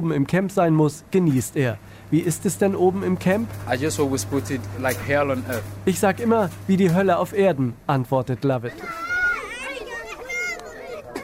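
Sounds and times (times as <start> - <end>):
speech: 0.0 - 9.1
children shouting and chattering while playing in dirt at a refugee camp: 8.7 - 11.2.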